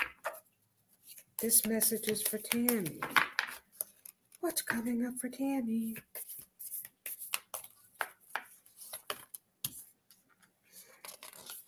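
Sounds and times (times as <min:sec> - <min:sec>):
slick new tarot cards being shuffled: 0:01.0 - 0:04.4, 0:06.0 - 0:10.3, 0:10.9 - 0:11.6
speech: 0:01.4 - 0:03.3, 0:04.5 - 0:06.2.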